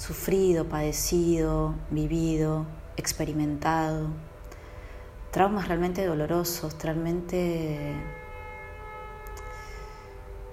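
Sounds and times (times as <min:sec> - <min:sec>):
speech: 0:00.0 - 0:04.3, 0:05.3 - 0:08.2
car horn blaring outside: 0:07.8 - 0:10.5.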